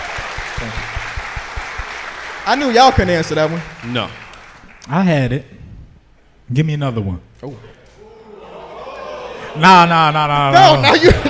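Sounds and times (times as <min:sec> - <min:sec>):
small group applauding: 0:00.0 - 0:04.9
speech: 0:00.6 - 0:00.9, 0:02.4 - 0:04.2, 0:04.9 - 0:05.6, 0:06.5 - 0:07.7, 0:09.6 - 0:11.2
laughter: 0:08.0 - 0:11.2.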